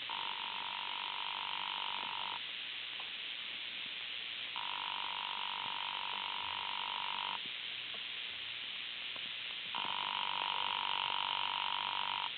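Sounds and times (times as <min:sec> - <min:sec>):
telephone in room 304 ringing unanswered, heard through the line: 0:00.0 - 0:02.4, 0:04.6 - 0:07.4, 0:09.8 - 0:12.3
steady faint hiss: 0:00.0 - 0:12.3.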